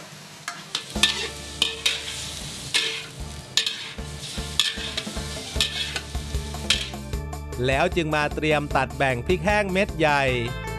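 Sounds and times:
pork fat sizzling in a frying pan: 0:00.0 - 0:07.2
speech: 0:07.6 - 0:10.6.

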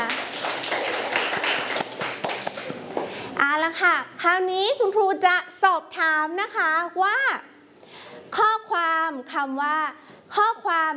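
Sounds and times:
group of children clapping together: 0:00.0 - 0:03.2
speech: 0:03.7 - 0:07.5, 0:08.3 - 0:10.9.

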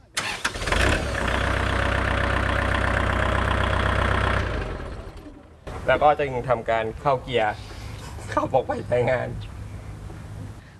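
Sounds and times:
tractor engine starting in neutral and idling: 0:00.0 - 0:06.2
speech: 0:05.9 - 0:07.7, 0:08.3 - 0:09.5.

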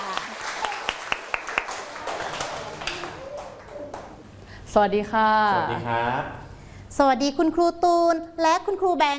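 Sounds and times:
small group of children clapping: 0:00.0 - 0:04.3
speech: 0:04.7 - 0:06.4, 0:07.0 - 0:09.1.

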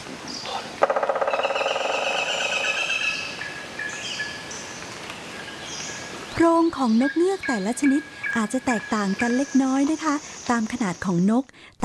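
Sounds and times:
woodpecker drilling a nest hole in a tree trunk: 0:00.8 - 0:03.4
speech: 0:06.4 - 0:11.8.

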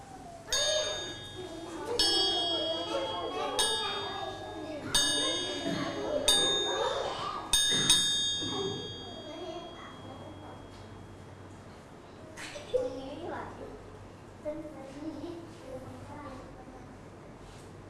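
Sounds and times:
low murmur of voices: 0:00.0 - 0:17.2
room noise: 0:00.0 - 0:17.8
bright metallic signal chime struck for a children's movement game: 0:00.5 - 0:11.2.

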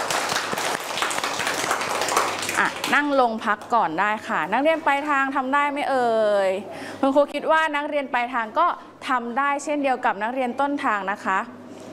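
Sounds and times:
group of children clapping: 0:00.0 - 0:03.1
speech: 0:02.6 - 0:11.6.

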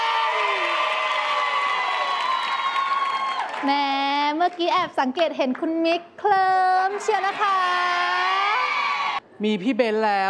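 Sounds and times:
large crowd applauding: 0:00.0 - 0:04.1, 0:06.8 - 0:09.2
speech: 0:03.6 - 0:03.9, 0:04.5 - 0:08.2, 0:09.4 - 0:10.2.

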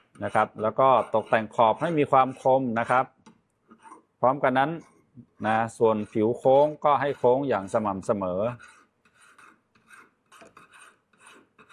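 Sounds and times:
fine file rasping across a workpiece being shaped into a bangle: 0:00.0 - 0:03.1, 0:03.7 - 0:11.7
speech: 0:00.2 - 0:03.2, 0:04.2 - 0:08.8.

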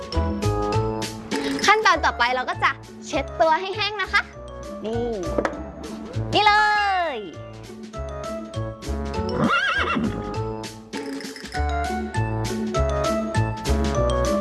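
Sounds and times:
upbeat music with a regular beat: 0:00.0 - 0:14.3
speech: 0:01.7 - 0:07.4
horse whinnying: 0:09.3 - 0:10.2.

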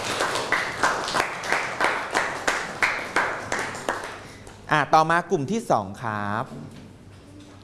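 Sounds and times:
classroom group clapping for classmates after their presentation: 0:00.0 - 0:04.5
speech: 0:04.7 - 0:06.8.

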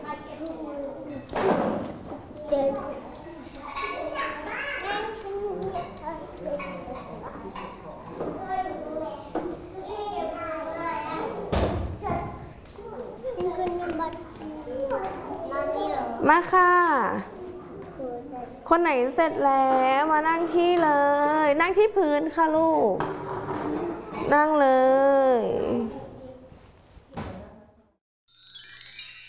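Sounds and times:
thumps and clattering of toys being dropped and stacked: 0:01.2 - 0:02.3, 0:11.5 - 0:12.5, 0:23.0 - 0:24.3
steady chatter from several kids: 0:02.4 - 0:11.5, 0:12.8 - 0:16.2
speech: 0:16.3 - 0:17.3, 0:18.7 - 0:23.1, 0:24.3 - 0:25.8.

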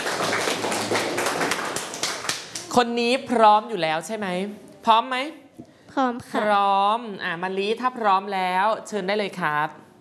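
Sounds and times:
group of students clapping for a classmate: 0:00.0 - 0:02.8
speech: 0:02.8 - 0:09.8.

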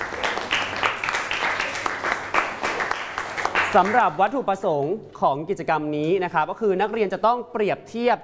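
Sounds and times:
students clapping in a classroom: 0:00.0 - 0:04.2
speech: 0:03.7 - 0:08.2.

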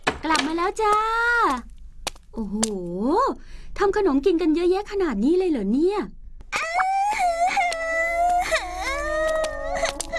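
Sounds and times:
speech: 0:00.3 - 0:01.7, 0:02.4 - 0:06.2
child crying: 0:06.6 - 0:10.1.

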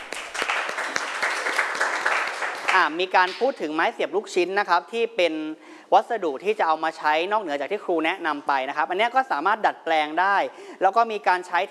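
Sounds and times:
class clapping for a student: 0:00.0 - 0:03.5
speech: 0:02.8 - 0:11.6.

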